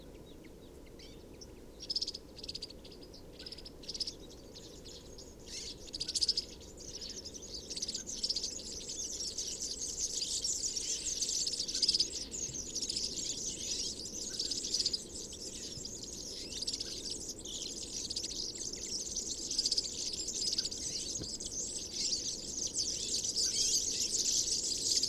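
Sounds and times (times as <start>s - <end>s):
steady low background noise: 0.0s - 25.0s
European serin-type high jingling twitter: 5.5s - 25.0s.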